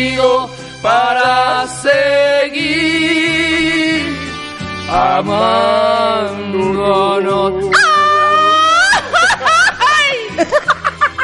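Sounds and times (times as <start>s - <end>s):
speech: 0.0s - 3.4s, 4.9s - 7.8s
person letting out a mariachi-style grito yell: 7.7s - 9.1s
laughter: 7.8s - 11.2s.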